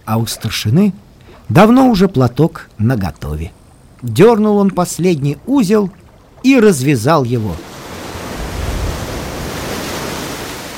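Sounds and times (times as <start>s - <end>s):
speech: 0.1s - 7.7s
sea surf roaring: 4.8s - 10.7s.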